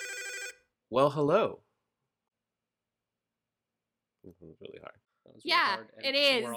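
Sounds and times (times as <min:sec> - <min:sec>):
electronic telephone ring: 0:00.0 - 0:00.6
speech: 0:00.9 - 0:01.7, 0:04.2 - 0:06.5.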